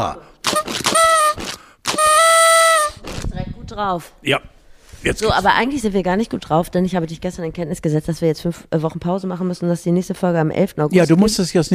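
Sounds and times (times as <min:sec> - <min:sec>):
speech: 0:00.0 - 0:00.3, 0:03.7 - 0:11.7
buzzy toy horn blasts: 0:00.5 - 0:03.0.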